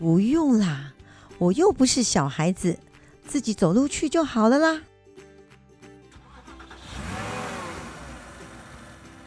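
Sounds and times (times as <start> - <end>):
speech: 0.0 - 4.9
car engine starting and driving off: 6.1 - 9.2.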